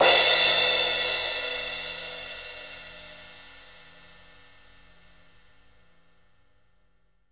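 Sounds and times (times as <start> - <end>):
crash cymbal of a rock drum kit: 0.0 - 3.7.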